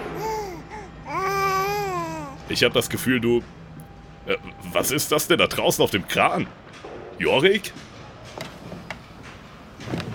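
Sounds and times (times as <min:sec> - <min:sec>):
baby babbling: 0:00.0 - 0:02.4
faint steady hum: 0:00.0 - 0:07.8
speech: 0:02.5 - 0:03.6, 0:04.2 - 0:07.9.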